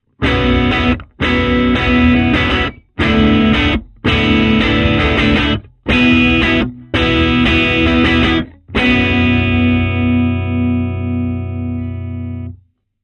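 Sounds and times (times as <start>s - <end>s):
guitar box recorded with bidirectional R121 microphone: 0.0s - 12.7s.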